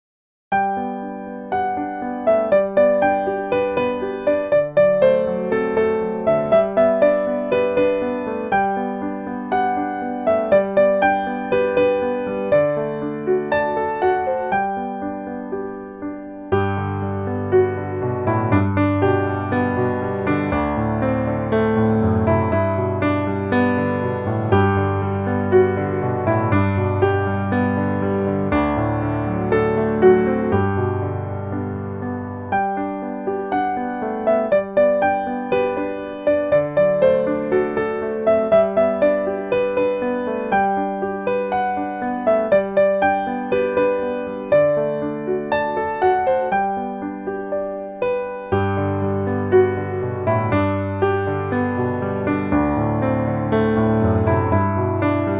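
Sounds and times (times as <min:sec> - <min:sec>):
piano playing: 0:00.5 - 0:55.3.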